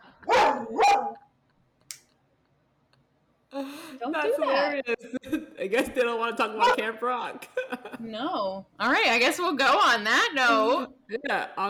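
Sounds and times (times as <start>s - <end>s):
dog barking: 0.2s - 1.3s, 6.6s - 6.9s
speech: 4.0s - 11.6s.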